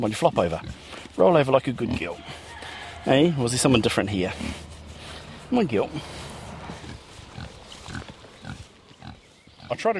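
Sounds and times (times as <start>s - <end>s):
speech: 0.0s - 2.4s, 3.0s - 4.7s, 5.5s - 6.2s, 9.7s - 9.9s
pig grunting and snuffling: 0.1s - 2.4s, 3.6s - 9.9s
fainter pig snorts: 0.3s - 1.2s, 3.7s - 9.8s.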